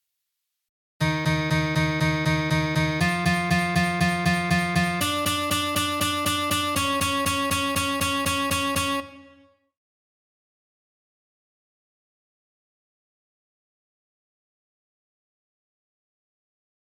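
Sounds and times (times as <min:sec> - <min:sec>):
piano octave playing exercise: 0:01.0 - 0:09.4.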